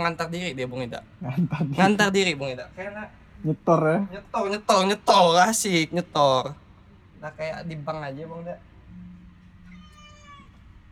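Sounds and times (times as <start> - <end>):
speech: 0.0 - 6.6, 7.2 - 9.1
low steady hum: 0.0 - 10.9
cat meowing: 9.6 - 10.7.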